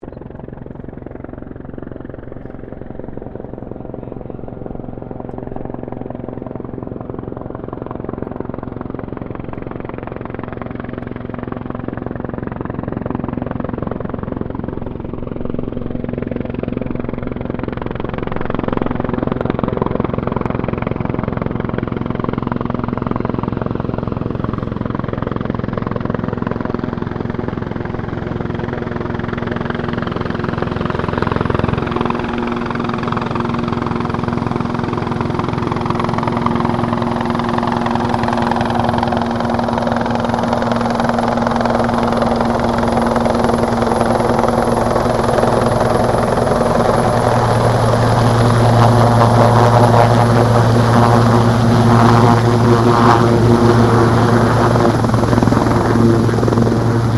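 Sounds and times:
Sikorsky S76 rescue helicopter passing and landing: 0:00.0 - 0:57.1.

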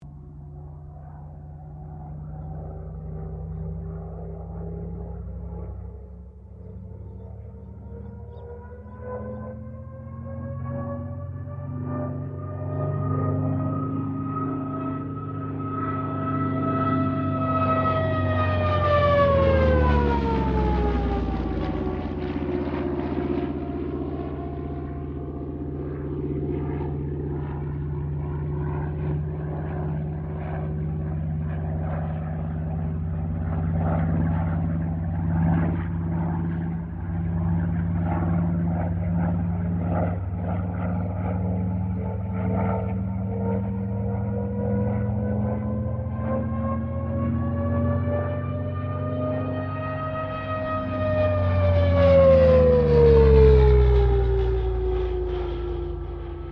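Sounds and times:
CA-13 Boomerang airplane flying a loop: 0:00.0 - 0:56.5.

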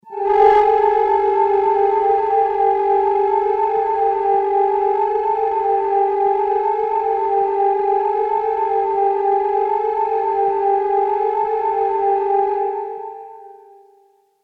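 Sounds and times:
discordant eerie grating horror drone: 0:00.0 - 0:13.4.

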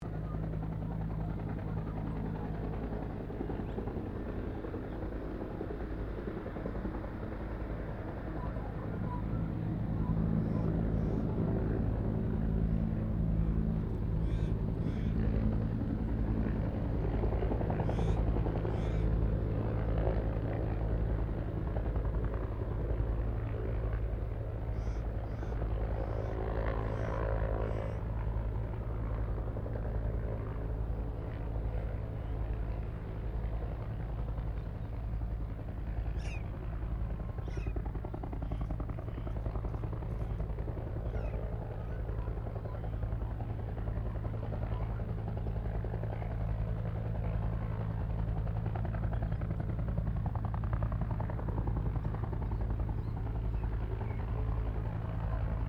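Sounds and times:
distant 1967 Bell UH-1 Iroquois helicopter hovering: 0:00.0 - 0:55.6.

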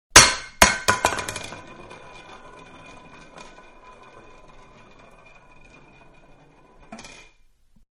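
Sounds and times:
large metal can falling onto wood: 0:00.2 - 0:01.6.

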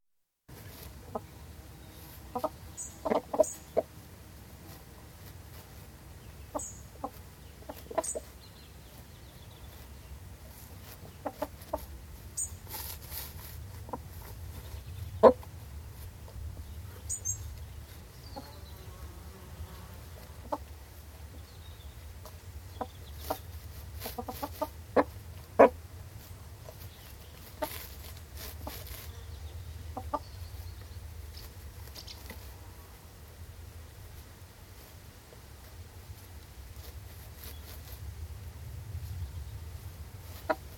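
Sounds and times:
very gentle wind in trees: 0:00.4 - 0:40.7
cockerel and hens outdoors: 0:00.5 - 0:04.1, 0:04.7 - 0:19.0, 0:20.0 - 0:33.0, 0:39.8 - 0:40.7
chickens scratching in grass for corn: 0:00.5 - 0:40.7.

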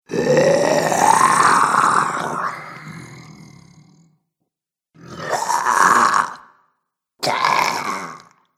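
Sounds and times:
horror zombie sound effects: 0:00.1 - 0:03.8, 0:05.0 - 0:06.6, 0:07.2 - 0:08.4.

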